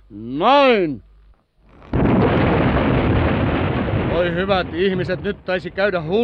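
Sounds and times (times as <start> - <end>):
speech: 0.1 - 1.1, 4.2 - 6.2
bonfire roaring crackle and rush: 1.7 - 6.2
fireworks exploding in a bonfire: 1.9 - 6.2
low rumble: 2.0 - 6.2.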